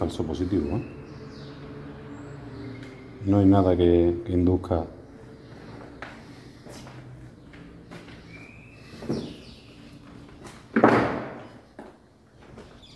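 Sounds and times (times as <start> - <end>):
speech: 0.0 - 1.0, 3.2 - 5.0
door creaking and thudding: 10.4 - 11.6.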